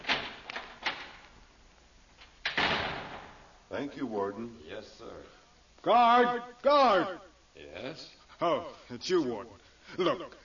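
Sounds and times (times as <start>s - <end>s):
heavy prison cell door clanking and rattling as it is opened: 0.0s - 1.2s, 2.4s - 3.5s
speech: 3.8s - 10.4s.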